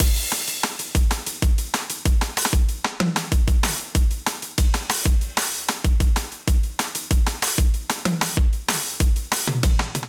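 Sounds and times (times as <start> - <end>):
drum kit beat from MIDI clips: 0.0 - 10.0.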